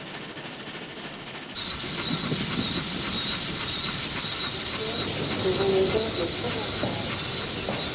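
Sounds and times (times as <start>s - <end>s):
train rumbling as it approaches a station in Lyon: 0.0s - 7.9s
thin high train wheel squeal: 1.6s - 7.9s.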